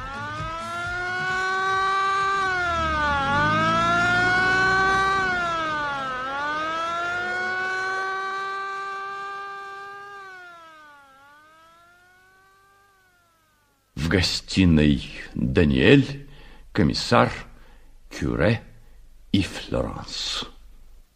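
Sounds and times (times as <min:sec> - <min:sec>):
ambulance siren wailing as the vehicle drives away: 0:00.0 - 0:13.6
speech: 0:14.1 - 0:16.2, 0:16.8 - 0:17.5, 0:18.1 - 0:18.7, 0:19.3 - 0:20.6.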